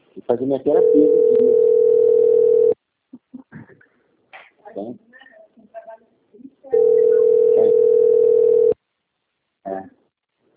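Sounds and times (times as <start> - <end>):
speech: 0.2 - 1.8
telephone line tone on a call: 0.8 - 2.8, 6.8 - 8.8.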